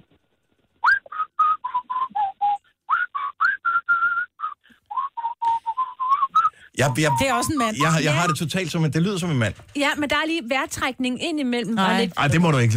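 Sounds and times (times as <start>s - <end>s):
caller whistling over the telephone line: 0.8s - 8.4s
speech: 6.8s - 12.7s.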